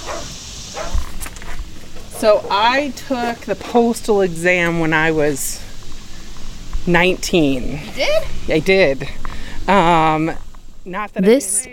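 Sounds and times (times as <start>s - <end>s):
dogs barking: 0.0s - 1.0s
steady hum: 0.0s - 11.7s
speech: 2.2s - 5.6s, 6.8s - 11.7s.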